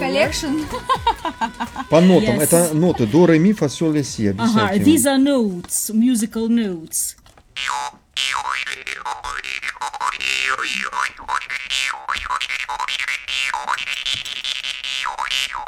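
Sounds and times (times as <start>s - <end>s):
laughter: 0.0s - 7.0s
speech: 0.1s - 14.5s
Siberian jaw harp komus twanging: 7.6s - 15.6s.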